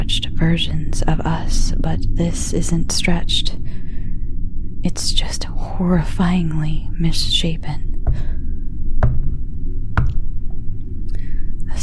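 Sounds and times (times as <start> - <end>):
low rumbling drone: 0.0 - 11.8
speech: 0.4 - 3.6, 4.8 - 7.9
knocking on a door: 9.0 - 10.3.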